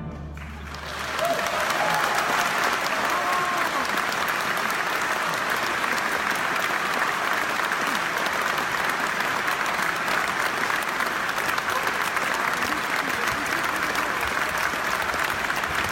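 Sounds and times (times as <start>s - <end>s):
large indoor crowd applauding in a concert hall: 0.1s - 15.8s.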